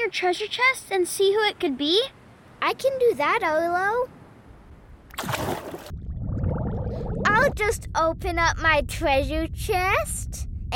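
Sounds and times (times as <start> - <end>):
speech: 0.0 - 4.2, 5.2 - 5.9, 7.4 - 10.7
bubbling sound effect: 5.1 - 8.1.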